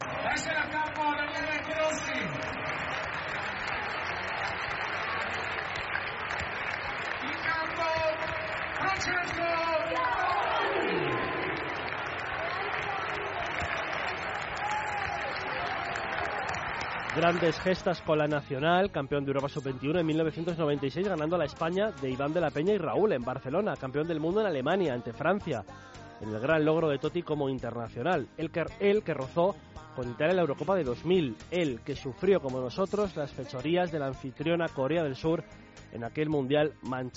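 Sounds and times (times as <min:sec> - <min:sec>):
large stadium crowd roaring and cheering in an ovation for a football player: 0:00.0 - 0:18.4
speech: 0:17.2 - 0:37.1.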